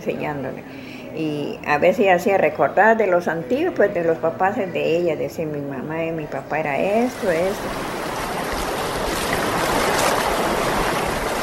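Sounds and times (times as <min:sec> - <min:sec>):
speech: 0:00.0 - 0:08.0
flowing river water rushing: 0:07.1 - 0:11.4.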